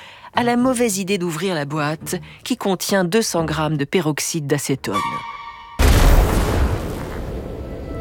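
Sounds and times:
speech: 0.4s - 5.4s
violent explosion sound effect: 5.8s - 7.9s.

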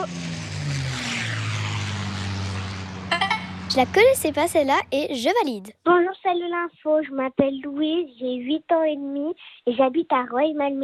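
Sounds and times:
propeller airplane engine roaring during takeoff: 0.0s - 5.3s
speech: 3.7s - 10.8s.

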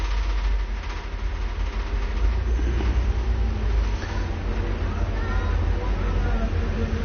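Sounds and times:
city traffic of cars, vans and motorbikes rumbling on a boulevard: 0.0s - 7.0s
vehicle engines revving: 0.0s - 7.0s
indistinct voices murmuring in the street: 2.6s - 7.0s.

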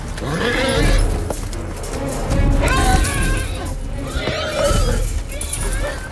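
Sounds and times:
several horses screaming and whinnying in distress: 0.1s - 1.3s, 2.6s - 6.1s.

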